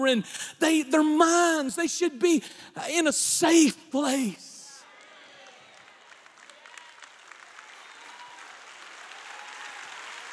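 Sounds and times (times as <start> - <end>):
speech: 0.0 - 4.5
audience clapping: 4.8 - 10.3.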